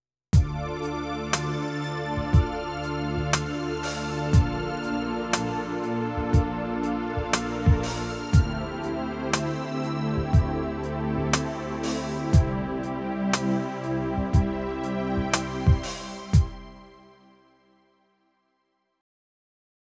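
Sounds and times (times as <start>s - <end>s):
synth pad: 0.5s - 16.4s.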